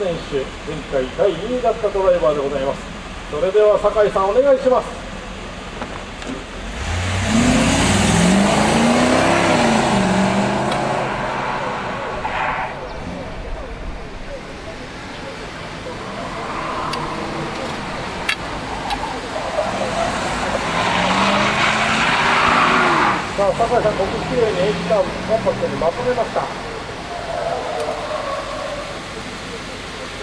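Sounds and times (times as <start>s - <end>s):
speech: 0.0s - 5.0s
competition car engine accelerating, braking and cornering: 6.6s - 13.8s, 15.8s - 29.8s.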